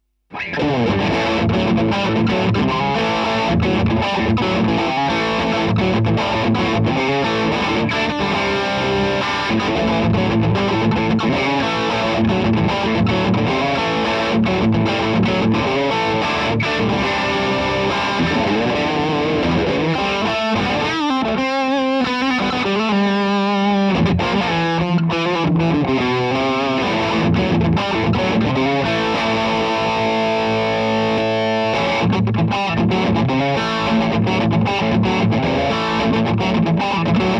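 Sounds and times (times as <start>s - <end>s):
gain guitar riff: 0.0s - 37.3s.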